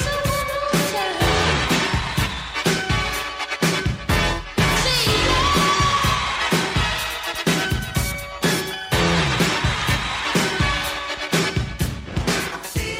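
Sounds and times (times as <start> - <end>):
rhythmic music with percussive beats: 0.0 - 12.9
cheering crowd roaring on a sampled live record: 1.1 - 4.0, 4.8 - 7.7, 8.4 - 11.8.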